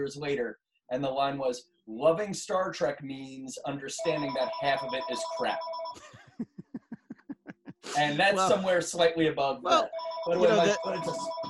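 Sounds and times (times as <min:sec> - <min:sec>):
speech: 0:00.0 - 0:06.5, 0:08.0 - 0:11.4
telephone ringing with a warbling electronic tone: 0:04.0 - 0:06.0, 0:09.8 - 0:11.4
laughter: 0:06.0 - 0:08.8, 0:09.7 - 0:11.4.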